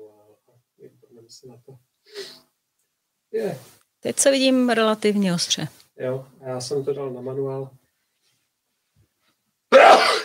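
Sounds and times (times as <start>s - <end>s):
speech: 1.3s - 2.4s, 3.3s - 7.8s
sneeze: 9.7s - 10.2s.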